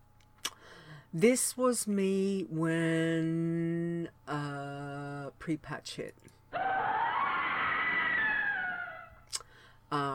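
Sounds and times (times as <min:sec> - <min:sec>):
speech: 0:01.1 - 0:06.8, 0:09.9 - 0:10.1
person screaming high-pitched: 0:06.6 - 0:09.2.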